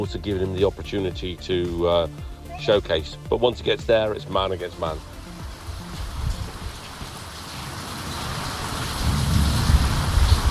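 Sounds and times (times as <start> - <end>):
speech: 0.0 - 5.1
steady rain: 4.0 - 10.5
deep thunder rumbling: 6.0 - 10.5.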